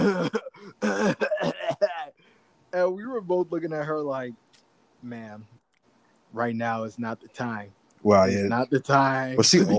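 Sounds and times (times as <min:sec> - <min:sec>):
person imitating a woman coughing excessively: 0:00.0 - 0:02.1
throat clearing: 0:00.0 - 0:02.1
speech: 0:03.2 - 0:05.6, 0:06.3 - 0:09.7.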